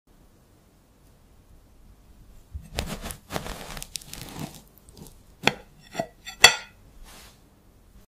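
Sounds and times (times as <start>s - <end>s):
knife cutting cake: 2.7s - 6.8s.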